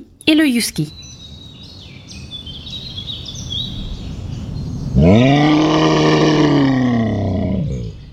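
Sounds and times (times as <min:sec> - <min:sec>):
faint birds chirping: 0:00.0 - 0:08.1
speech: 0:00.2 - 0:01.0, 0:05.0 - 0:05.4
brown bear roaring: 0:05.0 - 0:08.0.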